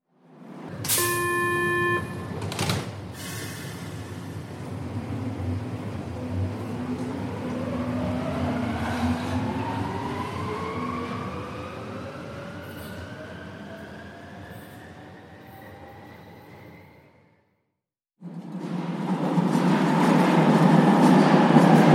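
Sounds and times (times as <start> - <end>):
U-Bahn subway train: 0.1 - 17.6, 18.2 - 21.9.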